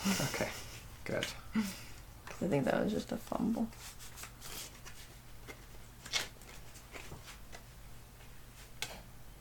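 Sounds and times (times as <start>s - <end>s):
faint steady hum: 0.0s - 9.3s
speech: 0.1s - 4.1s
deck of cards being shuffled: 3.7s - 7.6s.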